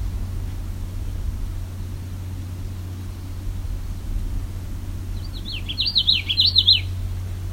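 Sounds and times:
Common Yellowthroat singing alongside a lake: 0.0 - 7.5
constant low traffic-like hum: 0.0 - 7.5.

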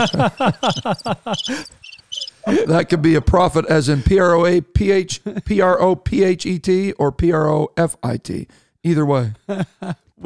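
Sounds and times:
crickets chirping sound effect: 0.0 - 3.3
laughter: 0.0 - 5.7, 9.5 - 10.1
speech: 0.0 - 10.2.

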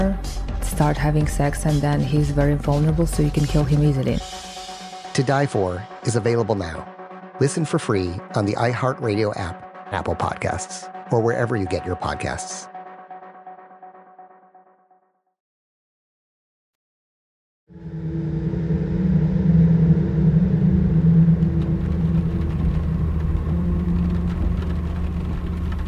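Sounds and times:
speech: 0.8 - 4.4, 5.2 - 12.7
car engine and road drone on the E40 motorway between Brussels and Liège: 17.7 - 25.8.

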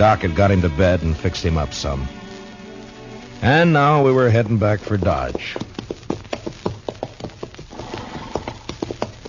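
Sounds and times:
speech: 0.0 - 2.2, 3.4 - 5.8
horse hooves clopping and stomping: 3.4 - 9.2.

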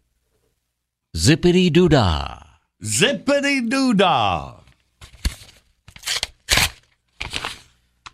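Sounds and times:
speech: 1.2 - 4.6
paper envelope being torn open: 5.2 - 7.7.

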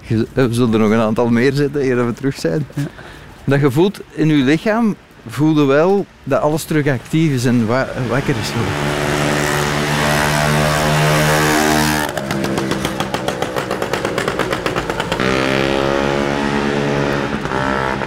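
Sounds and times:
speech: 0.1 - 9.1
motorcycle engine idling and sputtering: 9.0 - 18.0.

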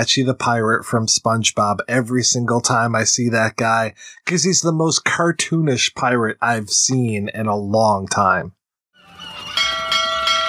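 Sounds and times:
speech: 0.0 - 8.6
bright bell strikes: 9.0 - 10.4.

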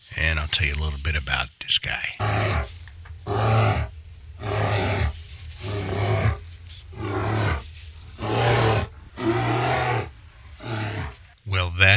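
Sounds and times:
speech: 0.5 - 2.8
grizzly bear roaring: 2.2 - 11.4.

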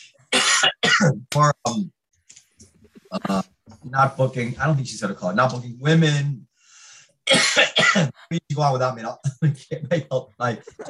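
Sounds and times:
person coughing after eating almonds: 0.3 - 1.2, 7.3 - 8.3
speech: 1.0 - 2.0, 3.1 - 6.5, 7.3 - 10.8.

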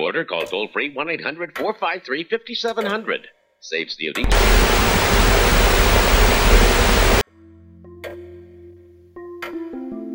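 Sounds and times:
speech: 0.0 - 5.2
loud dense burst of white noise: 4.2 - 7.2
low sustained electronic tones: 4.2 - 7.2
sharp clicks: 4.2 - 7.2.

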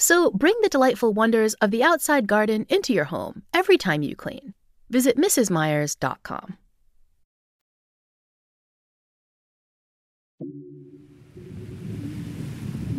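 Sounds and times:
speech: 0.0 - 6.6, 10.4 - 10.8
ocean waves: 10.9 - 12.9
low rumble underneath surf: 11.0 - 12.9.

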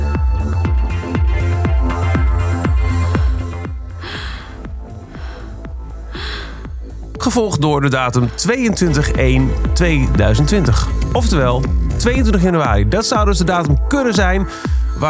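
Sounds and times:
deep low rumble: 0.9 - 12.9
woman panting heavily: 2.8 - 7.1
speech: 7.3 - 15.0.

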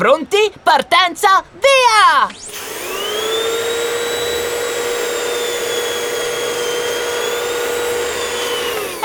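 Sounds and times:
speech: 0.0 - 2.8
vacuum cleaner running: 2.3 - 9.0.

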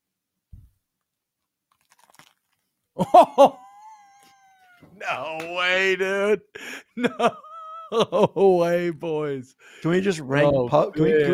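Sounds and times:
biting into crunchy juicy food: 1.7 - 2.8
speech: 3.0 - 3.6, 5.1 - 11.3
laughter: 3.0 - 9.3.

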